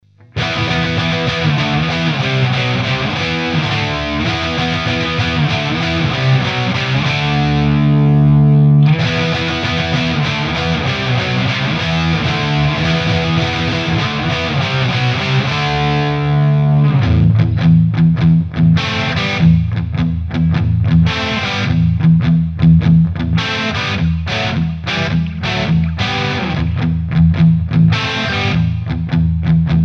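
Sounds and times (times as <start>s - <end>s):
Digitech RP255 guitar effects processor: 0.0s - 29.8s.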